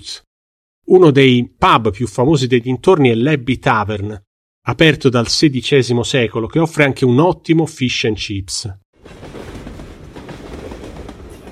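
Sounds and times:
speech: 0.0 - 0.3, 0.9 - 9.3
train rolling along the tracks: 9.0 - 11.5
train wheels clacking on rails: 9.0 - 11.5.

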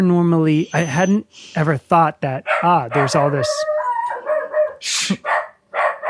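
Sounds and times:
speech: 0.0 - 3.8, 4.8 - 5.4
dog barking wanting to squirrel hunt: 2.5 - 6.0.

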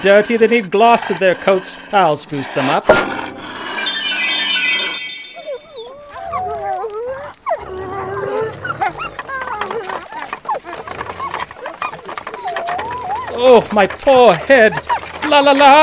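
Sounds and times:
speech: 0.0 - 3.4, 13.6 - 15.8
wolves snarling, growling and howling: 0.0 - 3.8, 5.3 - 15.8
bright ringing tone: 3.0 - 5.9.

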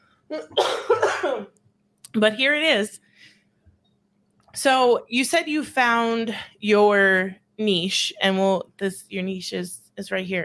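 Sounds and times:
speech: 0.3 - 0.9, 2.2 - 3.3, 4.6 - 10.4
harsh coughing fit: 0.3 - 1.5.

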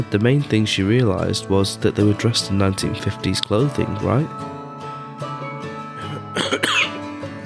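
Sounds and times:
speech: 0.0 - 4.6
person coughing harshly: 6.0 - 7.0
throat clearing: 6.0 - 7.0.

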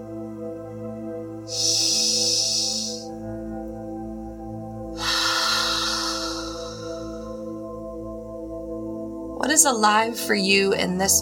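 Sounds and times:
steady low sustained tones: 0.9 - 9.3
speech: 1.5 - 1.8, 9.6 - 11.2
breath exhaled out through the mouth during breathwork: 1.5 - 3.2, 5.0 - 7.7.

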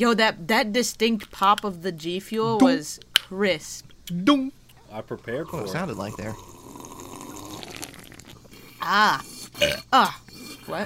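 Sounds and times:
speech: 0.0 - 6.5, 8.8 - 10.8
loud croaky burp: 5.5 - 8.4, 9.6 - 10.0.

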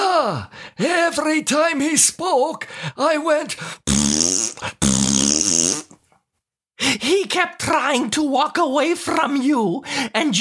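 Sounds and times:
speech: 0.2 - 5.8, 7.0 - 10.4
person blowing a sputtering raspberry with the mouth imitating a fart: 3.8 - 6.0.

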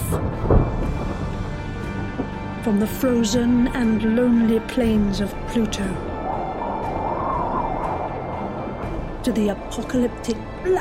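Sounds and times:
thunder rumbling: 0.0 - 3.7, 5.4 - 10.0
speech: 2.6 - 6.1, 9.3 - 10.7.

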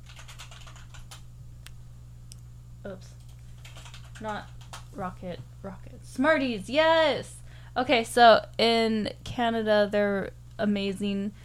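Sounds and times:
typing on a computer keyboard: 0.0 - 1.2, 3.2 - 4.8
speech: 2.8 - 3.2, 4.2 - 11.4.

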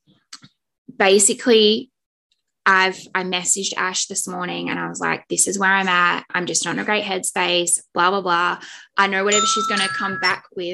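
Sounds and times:
speech: 1.0 - 1.9, 2.6 - 10.7
medication reminder alarm chiming with bell-like tones: 9.3 - 10.5.

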